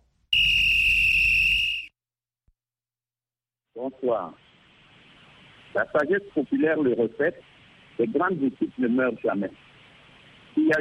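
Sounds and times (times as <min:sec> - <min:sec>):
shrill sustained referee's whistle blast: 0:00.3 - 0:01.9
speech: 0:03.8 - 0:04.4, 0:05.7 - 0:09.7, 0:10.6 - 0:10.7.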